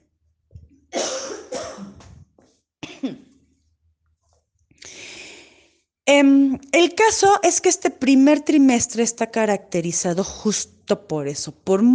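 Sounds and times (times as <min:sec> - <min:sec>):
harsh coughs: 0:01.0 - 0:02.1, 0:02.8 - 0:03.3
rough throat clear: 0:02.8 - 0:03.3
speech: 0:03.0 - 0:03.3, 0:06.1 - 0:11.9
breathy exhale: 0:04.8 - 0:05.8.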